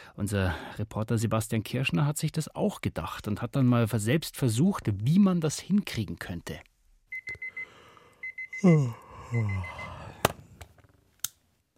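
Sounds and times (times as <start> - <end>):
speech: 0.2 - 6.7, 8.6 - 9.8
digital alarm clock beeping: 7.1 - 8.6, 9.4 - 9.9
person groaning: 8.6 - 10.3.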